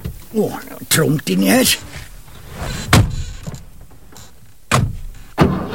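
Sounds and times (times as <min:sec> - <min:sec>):
speech: 0:00.3 - 0:02.1
car door thunking shut: 0:02.8 - 0:03.7, 0:04.7 - 0:05.6.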